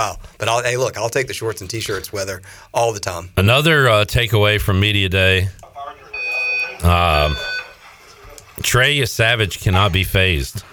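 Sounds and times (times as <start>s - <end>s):
speech: 0.0s - 5.7s, 6.8s - 7.5s, 8.6s - 10.7s
fire alarm blaring with a steady high-pitched electronic tone: 6.1s - 7.9s.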